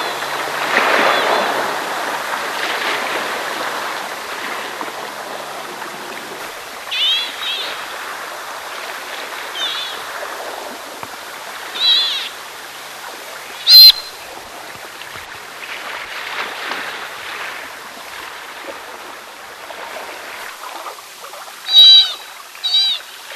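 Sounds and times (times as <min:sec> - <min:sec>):
low hiss: 0:00.0 - 0:23.3
sea otter screeching calls: 0:06.9 - 0:08.0, 0:09.5 - 0:10.1, 0:11.8 - 0:12.4, 0:13.6 - 0:14.2, 0:21.7 - 0:23.1.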